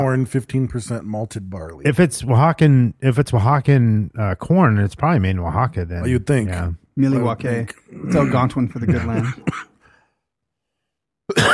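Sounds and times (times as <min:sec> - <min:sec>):
speech: 0:00.0 - 0:09.7, 0:11.3 - 0:11.5
harsh throaty cough: 0:07.9 - 0:09.8, 0:11.3 - 0:11.5.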